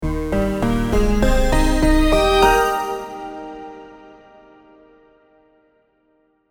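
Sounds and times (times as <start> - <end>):
audio logo jingle: 0.0 - 4.2.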